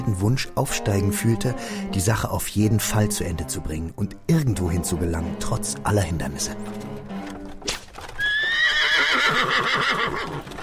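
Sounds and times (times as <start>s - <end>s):
speech: 0.2s - 6.9s
mare's hooves clip-clopping at a brisk trot pulling a cart: 5.9s - 10.6s
mare whinnying while pulling a cart: 8.2s - 10.6s.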